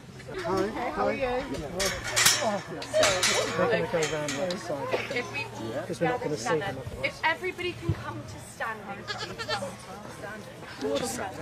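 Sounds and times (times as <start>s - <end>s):
soft murmuring voices: 0.0s - 11.4s
speech: 0.3s - 11.4s
goat bleating: 9.0s - 9.8s.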